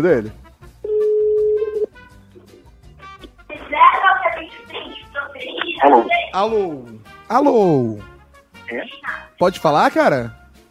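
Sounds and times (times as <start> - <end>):
speech: 0.0 - 0.4, 5.8 - 8.1, 8.7 - 10.4
telephone dial tone: 0.8 - 1.9.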